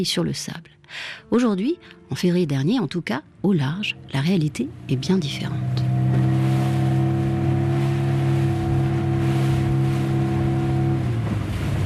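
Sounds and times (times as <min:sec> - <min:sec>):
speech: 0:00.0 - 0:06.3
fishing boat engine droning at sea: 0:03.5 - 0:11.8
wind at sea: 0:03.9 - 0:11.8
waves at sea: 0:04.1 - 0:11.8.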